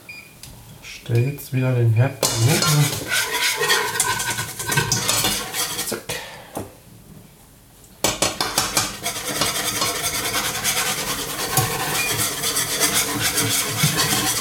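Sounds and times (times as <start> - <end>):
speech: 1.0 - 3.3
spoon stirring flour into a pot on the stove: 2.2 - 6.1, 8.0 - 14.3.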